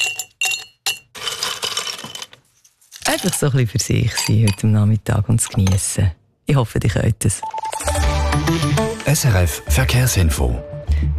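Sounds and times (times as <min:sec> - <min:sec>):
ice cubes clinking against a glass of Campari soda: 0:00.0 - 0:02.4, 0:03.0 - 0:04.8
speech: 0:03.1 - 0:07.6, 0:08.4 - 0:11.1.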